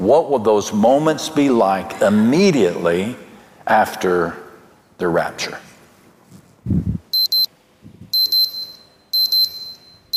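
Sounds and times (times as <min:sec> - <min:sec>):
speech: 0:00.1 - 0:04.4, 0:05.0 - 0:05.7, 0:06.6 - 0:06.9
soft low thumps: 0:06.6 - 0:07.1
phone alarm bright electronic double beeps: 0:07.1 - 0:07.5, 0:08.1 - 0:10.1.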